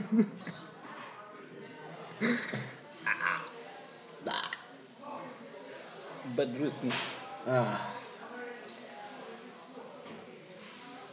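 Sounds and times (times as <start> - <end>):
faint murmur of voices: 0.0 - 11.1
speech: 0.1 - 0.6, 2.2 - 2.8, 6.3 - 8.0
person burping: 2.2 - 3.5, 4.2 - 4.6, 7.5 - 8.0.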